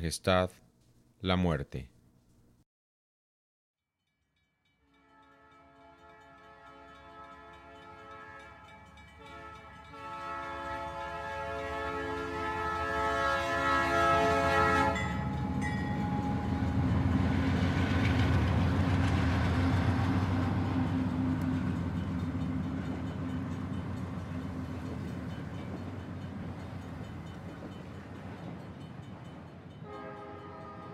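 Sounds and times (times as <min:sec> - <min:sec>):
speech: 0:00.0 - 0:00.6, 0:01.2 - 0:01.9
freight train horn blaring at a dead-end terminus station: 0:04.9 - 0:17.9, 0:19.4 - 0:25.0, 0:29.7 - 0:30.9
freight train rolling with heavy rumble and rattle: 0:14.4 - 0:30.9.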